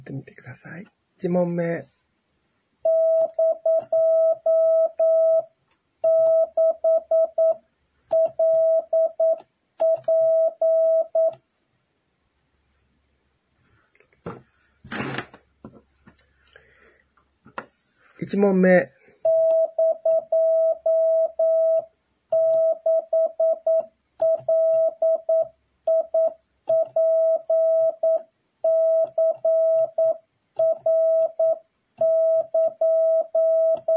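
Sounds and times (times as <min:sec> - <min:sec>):
speech: 0:00.1 - 0:02.0, 0:02.9 - 0:11.4, 0:18.2 - 0:33.9
Japanese wabun Morse code beeping tone for copying practice: 0:02.9 - 0:11.4, 0:19.2 - 0:33.9.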